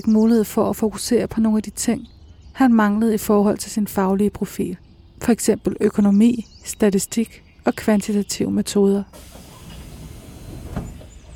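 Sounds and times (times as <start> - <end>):
speech: 0.0 - 9.4
faint hiss: 9.1 - 11.3
train rumbling along the tracks: 9.1 - 11.3.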